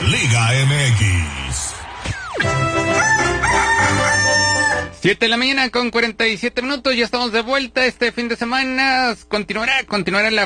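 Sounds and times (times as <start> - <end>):
speech: 0.2 - 1.4, 5.0 - 10.4
rooster crowing: 2.7 - 5.0.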